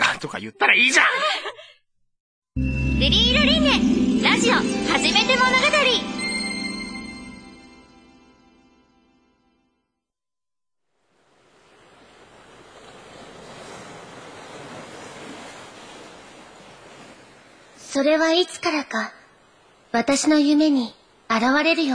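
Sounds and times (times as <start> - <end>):
speech: 0.2 - 1.6, 2.6 - 6.2, 18.0 - 19.2, 19.9 - 21.9
short tonal chime: 2.6 - 8.4
gentle waves washing against a shore of a deserted beach: 2.9 - 7.9, 10.8 - 21.9.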